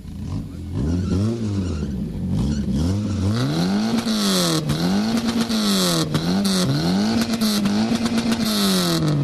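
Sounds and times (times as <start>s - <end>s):
car engine revving through a loud throaty exhaust at a car meet: 0.0s - 9.2s.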